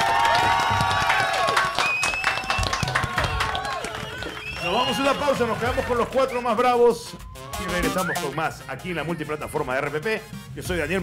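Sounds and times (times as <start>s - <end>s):
studio audience applauding: 0.0s - 6.2s
studio crowd cheering and whooping: 0.0s - 8.4s
speech: 5.1s - 11.0s.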